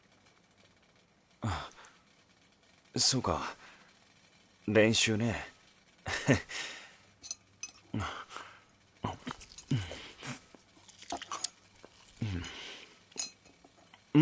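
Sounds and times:
speech: 3.0 - 3.6, 4.7 - 5.5, 6.1 - 6.7, 7.9 - 8.2
home-cooked food being chewed and bitten: 9.0 - 14.1
light clinks: 13.1 - 14.0.

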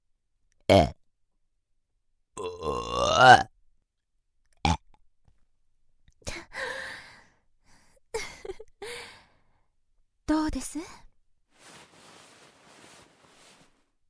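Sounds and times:
speech: 0.7 - 1.0, 3.2 - 3.5
shrine maiden's long croaking belch: 2.4 - 3.5.

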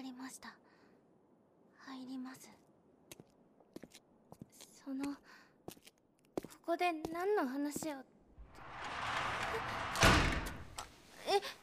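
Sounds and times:
speech: 0.3 - 0.6, 2.0 - 2.7, 4.9 - 5.2, 6.7 - 8.2
door sliding: 8.4 - 10.9.

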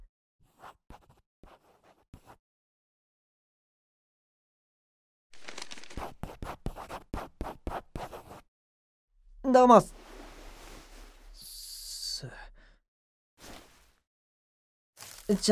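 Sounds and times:
ballpoint pen scratching a signature on the back of a coupon: 0.4 - 2.4, 5.8 - 8.4
speech: 9.5 - 10.0, 15.3 - 15.5.

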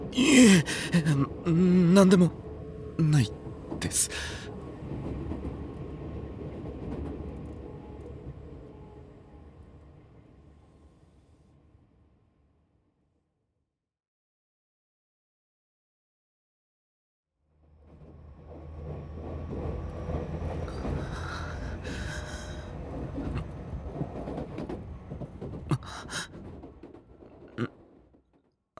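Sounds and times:
rumbling rail noise inside a moving train: 0.0 - 12.3, 17.6 - 28.2
speech: 0.2 - 2.4, 3.0 - 4.5.

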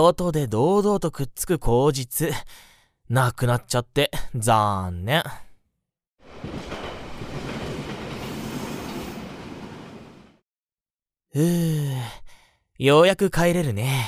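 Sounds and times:
speech: 0.0 - 5.4, 11.4 - 12.2, 12.8 - 14.0
train rumbling on rails: 6.2 - 10.4.

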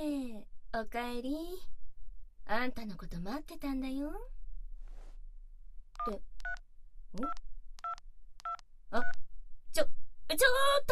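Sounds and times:
speech: 0.7 - 1.8, 2.5 - 4.4, 6.0 - 7.5, 8.9 - 9.2, 9.8 - 10.9
two-tone phone keypad beeps of a number being dialed: 6.0 - 6.6, 7.2 - 9.2.

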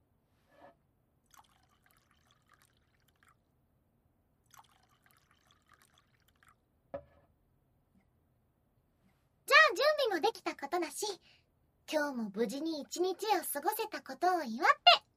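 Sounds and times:
alcohol pouring into a glass: 1.2 - 3.5, 4.4 - 6.6
speech: 10.2 - 15.0.

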